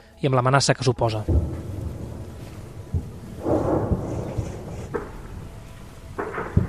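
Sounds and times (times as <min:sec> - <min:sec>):
steady low noise: 0:00.0 - 0:06.6
speech: 0:00.2 - 0:01.6
distant bomb explosions: 0:01.2 - 0:06.6
sharp thuds: 0:01.2 - 0:06.6.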